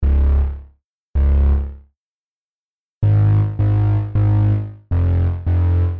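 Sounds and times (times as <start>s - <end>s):
MIDI bass melody: 0.0s - 1.8s, 3.0s - 5.9s.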